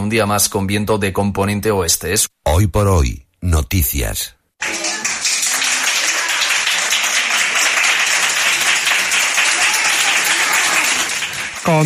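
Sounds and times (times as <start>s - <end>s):
speech: 0.1s - 4.4s, 11.6s - 11.8s
applause from a small group of medical staff and patient: 4.6s - 11.8s.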